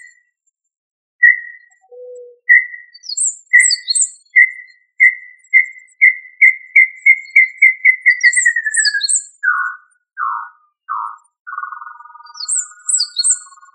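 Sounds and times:
tinamou whistled call, Tinamidae: 0:01.3 - 0:13.7
high chirping notes: 0:10.9 - 0:13.7.

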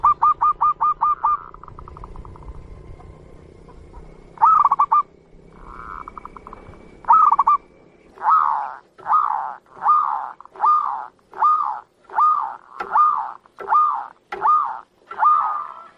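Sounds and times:
zebra dove cooing: 0:00.0 - 0:02.5, 0:04.4 - 0:07.6, 0:08.2 - 0:15.9.

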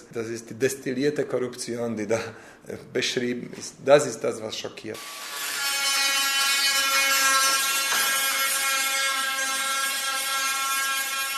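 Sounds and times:
speech: 0:00.1 - 0:05.4
angle grinder grinding the bodywork of a red 1958 Jaguar E-Type in a workshop: 0:05.0 - 0:11.3.

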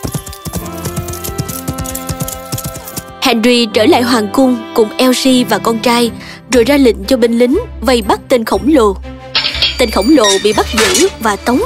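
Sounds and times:
horses ridden away from a giant's cave clip-clopping: 0:00.0 - 0:03.2
speech: 0:03.3 - 0:09.1, 0:09.8 - 0:11.6.

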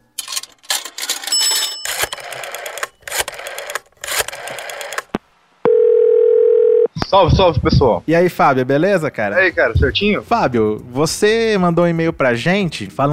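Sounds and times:
clattering clicking telephone noise while calling a listener: 0:00.2 - 0:05.2
steady loud telephone tone while calling a listener: 0:05.6 - 0:06.9
speech: 0:07.1 - 0:13.1.

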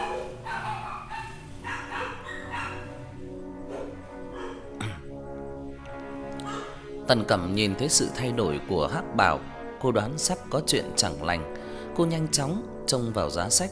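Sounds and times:
pack of the neighbour's dogs barking: 0:00.0 - 0:04.8, 0:06.4 - 0:06.8
steady droning background: 0:01.4 - 0:13.6
speech: 0:07.1 - 0:13.6.

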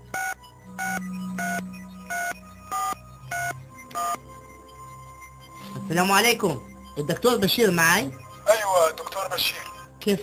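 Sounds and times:
touch-tone telephone dialing beeps: 0:00.1 - 0:09.9
speech: 0:05.9 - 0:08.2, 0:08.8 - 0:10.2.

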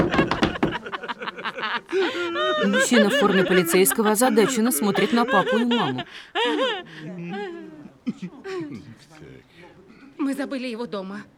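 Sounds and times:
knuckles knocking on a wooden table: 0:00.0 - 0:00.8
laughter: 0:00.0 - 0:09.0
speech: 0:02.6 - 0:07.2, 0:08.1 - 0:09.3, 0:10.2 - 0:11.3.

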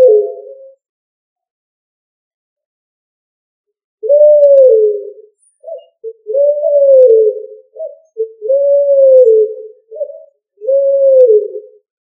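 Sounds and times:
pigeon cooing: 0:00.0 - 0:00.8, 0:04.0 - 0:11.9.

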